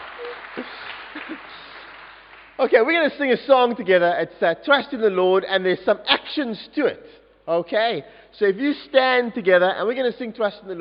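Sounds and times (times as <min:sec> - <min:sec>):
audience clapping: 0:00.0 - 0:02.8
speech: 0:00.4 - 0:01.7, 0:02.6 - 0:10.8.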